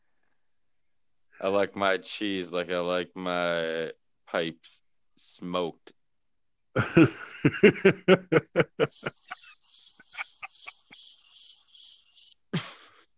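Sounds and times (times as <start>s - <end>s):
speech: 1.4s - 6.0s, 6.8s - 9.2s
snickering laughter: 6.8s - 11.2s, 12.6s - 13.0s
crickets chirping in a tank: 8.8s - 12.4s.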